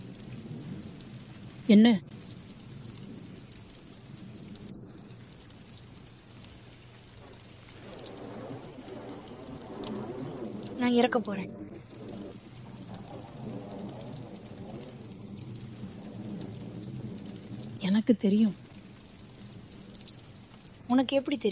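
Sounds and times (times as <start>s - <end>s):
low thunder rumbling in a thunderstorm: 0.0s - 21.4s
steady rain hissing in a thunderstorm: 0.0s - 21.4s
speech: 1.7s - 2.1s, 10.9s - 11.6s, 18.1s - 18.6s, 20.9s - 21.4s.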